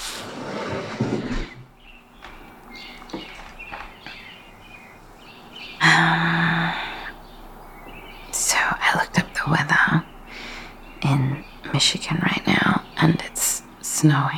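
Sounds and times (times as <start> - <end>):
loud harsh burst: 0.0 - 0.9
faint hum: 0.3 - 14.3
birds chirping and cawing outdoors at dawn: 1.7 - 13.8
speech: 14.0 - 14.3.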